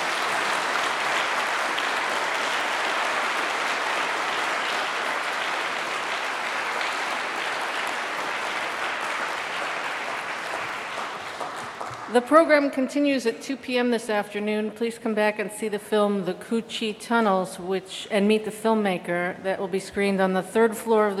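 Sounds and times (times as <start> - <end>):
audience applause: 0.0 - 12.1
speech: 12.1 - 21.1.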